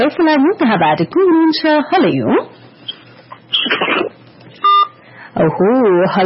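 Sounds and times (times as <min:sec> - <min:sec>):
speech: 0:00.0 - 0:02.6, 0:05.4 - 0:06.2
telephone line noise: 0:00.0 - 0:06.2
telephone call disconnecting beep: 0:04.6 - 0:05.0.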